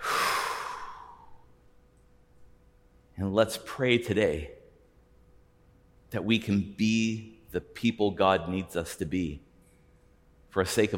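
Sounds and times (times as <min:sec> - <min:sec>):
deep breath blown out: 0:00.0 - 0:01.4
speech: 0:03.2 - 0:04.6, 0:06.1 - 0:09.5, 0:10.5 - 0:10.9.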